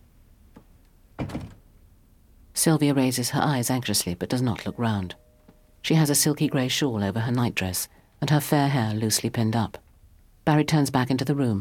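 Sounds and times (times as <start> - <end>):
room door pulled shut: 0.6 - 1.7
speech: 2.6 - 5.2, 5.8 - 9.8, 10.4 - 11.6.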